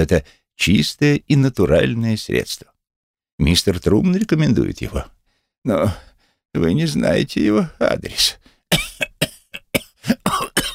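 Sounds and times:
speech: 0.0 - 2.7, 3.4 - 8.8
person coughing: 8.7 - 10.7.

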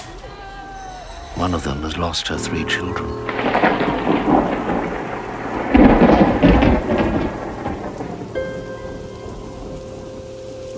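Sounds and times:
steady heavy rain outside a hospital window in Bosnia: 0.0 - 10.7
speech: 1.4 - 3.8
rolling thunder: 2.4 - 10.7.

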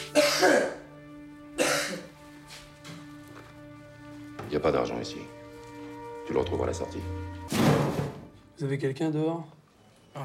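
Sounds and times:
person coughing during a prison intake body search: 0.0 - 0.9, 1.6 - 2.1
speech: 4.5 - 5.4, 6.3 - 7.8, 8.6 - 9.6.

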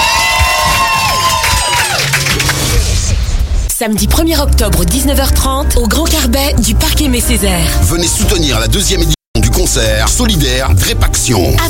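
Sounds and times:
high shouts and whoops from the audience: 0.0 - 2.4
audience at a live show cheering: 0.0 - 3.0
speech: 3.8 - 11.6.

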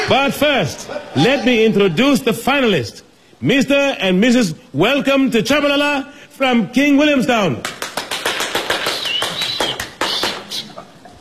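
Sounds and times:
speech: 0.1 - 7.8
audience clapping at a ballroom dance championship final: 7.5 - 10.7.

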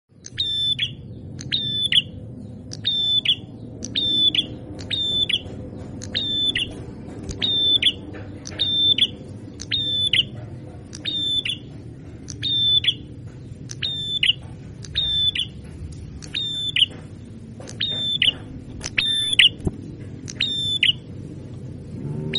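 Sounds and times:
constant low background rumble: 0.1 - 22.3
red-headed prinia singing level whistled notes with clicked attacks: 0.2 - 5.4, 7.4 - 10.3, 11.0 - 11.7, 12.4 - 13.1, 13.7 - 15.6, 16.3 - 17.0, 19.0 - 19.6, 20.3 - 21.0.

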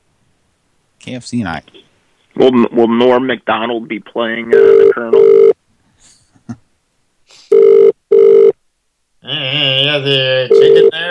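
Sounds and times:
speech: 1.0 - 1.8, 2.4 - 5.5, 9.5 - 11.0
outgoing phone call to a fast-food restaurant in Ireland ringing back: 4.6 - 5.5, 7.5 - 8.5, 10.5 - 11.0.

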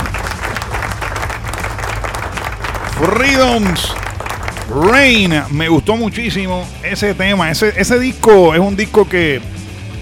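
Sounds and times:
audience applause: 0.0 - 5.3
speech: 3.0 - 4.0, 4.7 - 9.6.

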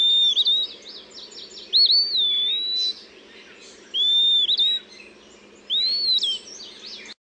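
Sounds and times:
Eastern Wood-Pewee giving slow plaintive slurred whistles: 0.0 - 3.1, 3.9 - 5.0, 5.7 - 7.2
buzzy bird call series: 0.0 - 6.6.

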